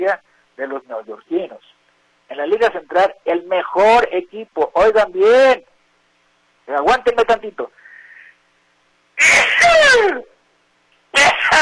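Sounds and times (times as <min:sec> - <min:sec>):
speech: 0:00.0 - 0:01.7, 0:02.4 - 0:05.7, 0:06.7 - 0:07.8, 0:09.2 - 0:10.3
person sneezing loudly: 0:09.2 - 0:10.0, 0:11.1 - 0:11.5.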